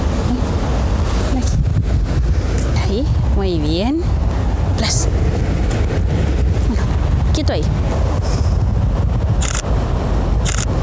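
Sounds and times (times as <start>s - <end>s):
wind rumbling against the microphone outdoors: 0.0s - 10.8s
speech: 3.5s - 4.0s
rapid-fire DSLR camera shutter clicks: 9.4s - 9.6s, 10.5s - 10.7s.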